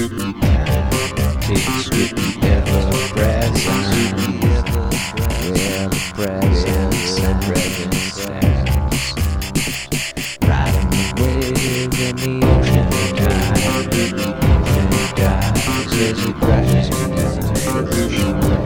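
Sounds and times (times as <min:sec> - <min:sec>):
voice rolling down: 0:00.2 - 0:18.6.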